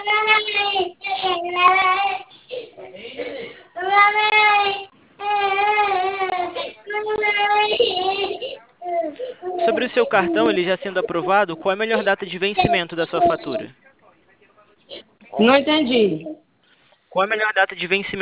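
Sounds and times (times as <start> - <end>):
baby crying in long wailing bursts: 0.0 - 13.7
speech: 10.2 - 13.8, 15.4 - 16.4, 17.2 - 18.2.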